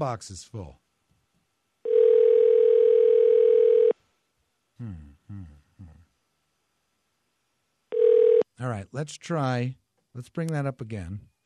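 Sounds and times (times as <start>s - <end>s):
speech: 0.0s - 0.8s, 4.8s - 6.0s, 8.6s - 11.3s
ringback tone of an unanswered outgoing telephone call: 1.9s - 3.9s, 7.9s - 8.4s.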